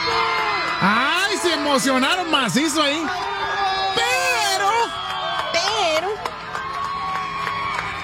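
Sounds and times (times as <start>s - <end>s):
lively crowd cheering after a World Cup final: 0.0s - 8.0s
overlapping excited shouts and whoops: 0.0s - 8.0s
speech: 1.6s - 3.4s.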